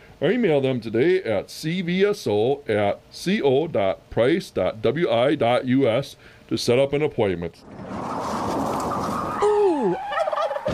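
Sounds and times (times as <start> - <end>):
noisy hiss: 0.0 - 10.7
speech: 0.2 - 8.3
big bird gobbling: 7.6 - 10.7.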